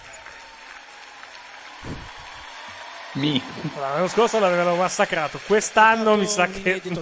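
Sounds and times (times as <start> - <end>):
audience applauding: 0.0 - 7.0
low thumps: 1.8 - 2.4
speech: 3.1 - 7.0.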